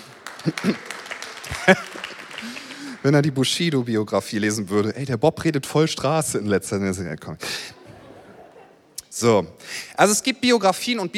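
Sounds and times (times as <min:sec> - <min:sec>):
audience applauding during a sermon: 0:00.0 - 0:03.6
laughter: 0:00.2 - 0:02.6, 0:07.4 - 0:09.1
speech: 0:00.4 - 0:00.9, 0:01.6 - 0:07.8, 0:09.2 - 0:11.1.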